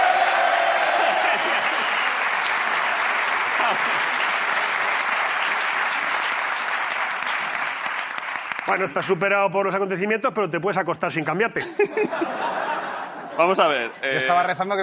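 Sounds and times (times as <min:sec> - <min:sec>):
audience applause of many hands clapping: 0:00.0 - 0:08.9
laughter: 0:00.8 - 0:02.1, 0:03.4 - 0:04.2, 0:11.6 - 0:14.8
speech: 0:08.7 - 0:12.6, 0:13.4 - 0:14.8.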